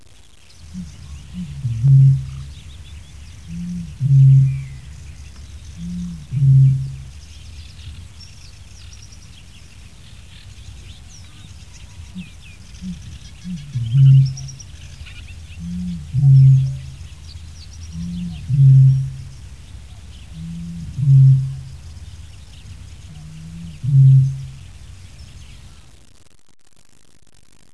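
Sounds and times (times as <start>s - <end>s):
Botaurus stellaris booming: 0.7s - 2.5s, 3.4s - 4.8s, 5.8s - 7.1s, 15.6s - 17.2s, 17.9s - 19.6s, 20.4s - 22.0s, 22.6s - 24.7s.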